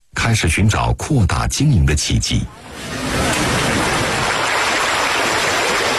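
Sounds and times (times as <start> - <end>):
speech: 0.3 - 3.4
small creek flowing in Xiamei village in the Wuyishan area of China: 2.5 - 5.9.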